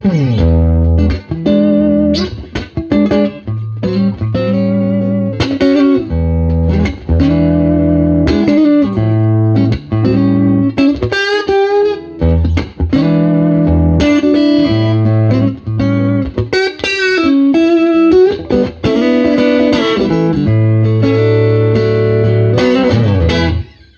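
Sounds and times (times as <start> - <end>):
blues music: 0.0 - 23.9.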